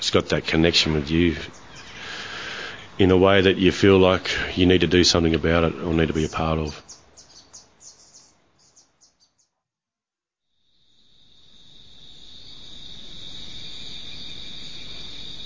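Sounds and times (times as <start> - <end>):
insects chirping at night: 0.0 - 9.5, 10.5 - 15.4
speech: 0.1 - 1.6, 3.0 - 6.9
loud high-pitched insect trill at night: 10.6 - 15.4.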